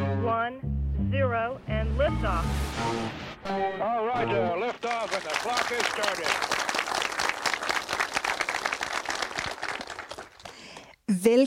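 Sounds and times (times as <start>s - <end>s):
speech: 0.5s - 6.7s, 11.1s - 11.4s
live audience applauding: 4.6s - 10.9s.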